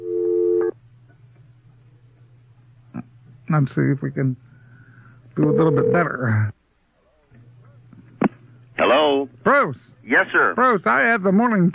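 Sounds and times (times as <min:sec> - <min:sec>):
faint low hum on a noisy telephone line: 0:00.0 - 0:11.7
speech: 0:03.5 - 0:04.5, 0:05.4 - 0:06.6, 0:09.1 - 0:11.7
steady mid-pitched telephone beep on a noisy line during redialing: 0:05.4 - 0:06.1.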